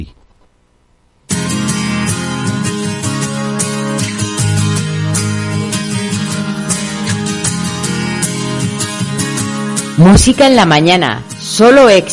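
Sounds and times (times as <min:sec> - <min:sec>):
pop song with full instrumentation and regular beat: 0:01.3 - 0:10.4
speech: 0:10.0 - 0:12.1.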